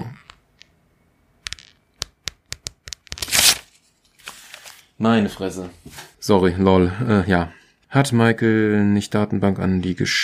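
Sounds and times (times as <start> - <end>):
sheets of paper tearing: 3.1 - 4.9
speech: 5.0 - 10.2.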